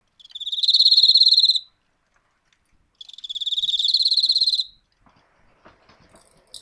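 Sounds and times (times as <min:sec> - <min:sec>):
enmakoorogi cricket chirping: 0:00.2 - 0:01.7, 0:03.0 - 0:04.8.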